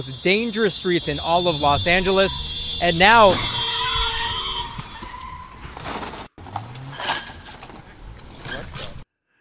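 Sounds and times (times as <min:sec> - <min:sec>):
speech: 0:00.0 - 0:03.6
rough traffic noise: 0:00.0 - 0:09.0
tires screeching in a sustained high squeal: 0:00.2 - 0:09.0
indistinct voices: 0:00.7 - 0:04.9
loud crunching bursts: 0:01.2 - 0:09.0.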